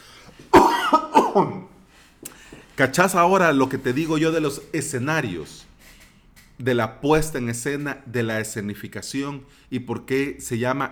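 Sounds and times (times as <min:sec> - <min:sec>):
person coughing raspy hacking coughs: 0:00.5 - 0:01.8
speech: 0:01.3 - 0:01.6, 0:02.8 - 0:05.7, 0:06.6 - 0:10.9.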